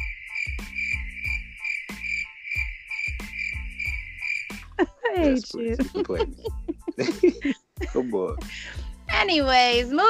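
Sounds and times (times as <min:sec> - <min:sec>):
crickets chirping: 0:00.0 - 0:04.8
laughter: 0:04.8 - 0:08.7
speech: 0:04.8 - 0:10.0.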